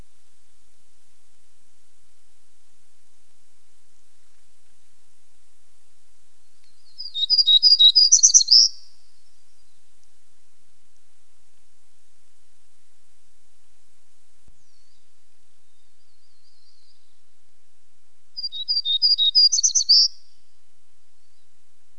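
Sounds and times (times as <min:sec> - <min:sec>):
hermit warbler singing: 0:06.4 - 0:09.9, 0:14.6 - 0:17.2, 0:18.4 - 0:20.4.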